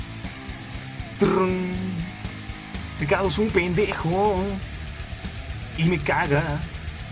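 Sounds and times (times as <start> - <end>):
speech: 1.2 - 2.0, 3.0 - 4.7, 5.8 - 6.7
acoustic guitar strum: 1.2 - 2.1.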